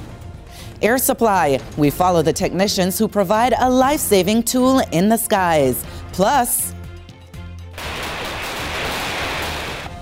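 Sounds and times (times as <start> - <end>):
speech: 0.8 - 6.7
gunfire from military security forces shooting: 7.8 - 9.9.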